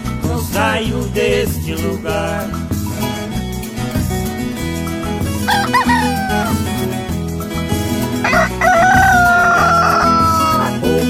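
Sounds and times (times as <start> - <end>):
loud music: 0.3 - 11.0
speech: 0.6 - 2.8
laughter: 5.5 - 6.6
rooster crowing: 5.5 - 6.6, 8.2 - 10.8.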